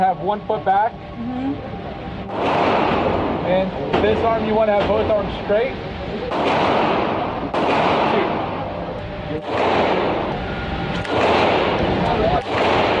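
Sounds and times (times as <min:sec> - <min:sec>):
speech: 0:00.0 - 0:08.3, 0:09.3 - 0:10.3
steady rough roar: 0:00.0 - 0:12.9
gunshots from a semi-automatic gun at a gun range: 0:02.3 - 0:04.2, 0:06.3 - 0:08.7, 0:09.3 - 0:12.9.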